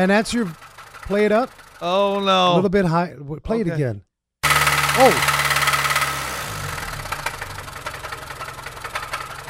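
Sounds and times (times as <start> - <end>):
speech: 0.0 - 4.1, 5.0 - 5.4
car engine idling with bottom-end rod or main bearing knock: 0.2 - 1.8, 4.4 - 9.4.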